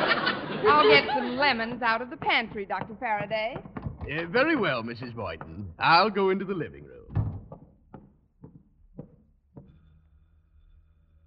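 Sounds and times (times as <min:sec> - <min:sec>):
laughter: 0:00.0 - 0:02.0
speech: 0:00.6 - 0:07.0
knocking on a wooden apartment front door: 0:02.2 - 0:04.4, 0:07.1 - 0:09.7.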